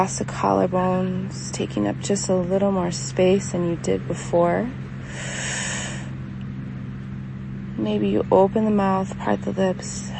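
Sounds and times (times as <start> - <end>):
speech: 0.0 - 5.6, 7.8 - 10.1
low steady hum: 0.0 - 10.1
deep breath inhaled during a slow relaxation exercise: 5.0 - 6.1.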